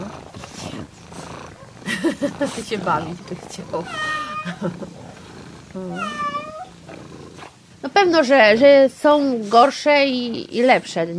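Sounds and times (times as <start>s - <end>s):
cat purring: 0.0s - 11.1s
speech: 2.0s - 5.0s, 5.8s - 6.4s, 8.0s - 11.1s.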